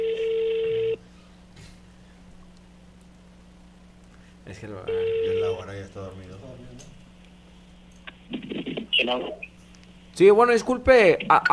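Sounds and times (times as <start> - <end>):
steady mid-pitched electronic telephone tone as a call is dialed: 0.0 - 1.0, 4.9 - 5.6
speech: 4.5 - 7.1, 8.3 - 9.5, 10.2 - 11.5.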